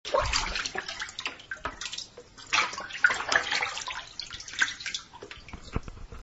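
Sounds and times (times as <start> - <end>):
bath: 0.1 - 6.1.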